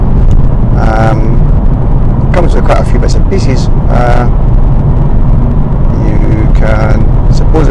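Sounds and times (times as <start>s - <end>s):
car interior low rumble while driving: 0.0s - 7.6s
high whine: 0.0s - 7.6s
speech: 3.3s - 4.5s, 6.6s - 7.0s.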